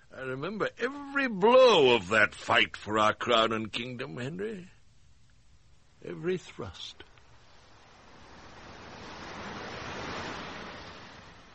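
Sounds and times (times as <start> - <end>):
speech: 0.1 - 4.8, 6.0 - 7.1
sea waves with hiss of surf: 7.1 - 11.5.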